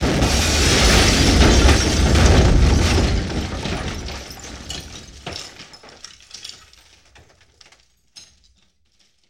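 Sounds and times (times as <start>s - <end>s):
medium explosion: 0.0s - 5.3s
various debris falling: 0.0s - 7.9s.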